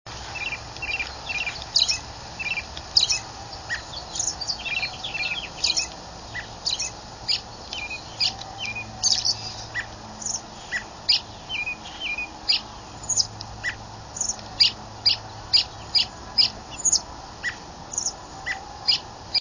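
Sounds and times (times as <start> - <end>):
immature robin singing: 0.1 - 19.3.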